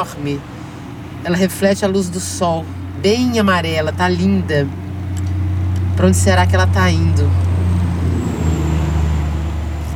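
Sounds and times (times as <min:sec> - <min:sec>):
speech: 0:00.0 - 0:00.6, 0:01.2 - 0:04.8, 0:06.0 - 0:07.5
truck carrying horses rumbling past on a road: 0:02.7 - 0:09.9.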